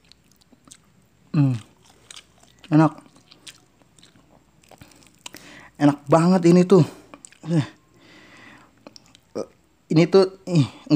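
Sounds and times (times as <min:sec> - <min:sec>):
crunchy chewing of fried catfish during a mukbang: 0:00.0 - 0:06.2, 0:06.9 - 0:07.6, 0:08.6 - 0:09.6
speech: 0:01.3 - 0:01.6, 0:02.7 - 0:03.0, 0:05.8 - 0:07.8, 0:09.4 - 0:10.9.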